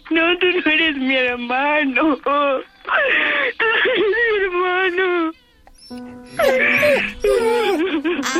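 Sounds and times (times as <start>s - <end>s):
speech: 0.1s - 4.2s
child crying and wailing: 5.8s - 8.3s.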